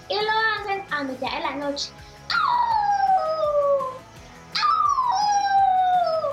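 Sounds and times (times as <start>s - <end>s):
speech: 1.0s - 2.5s
werewolf howling: 2.3s - 4.0s, 4.6s - 6.3s.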